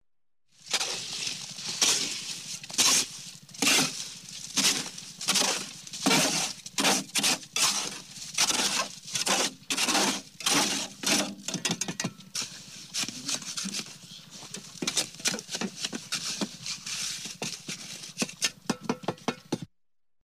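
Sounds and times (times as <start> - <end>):
shovel tipping sand into concrete mixer: 0.6 - 18.7.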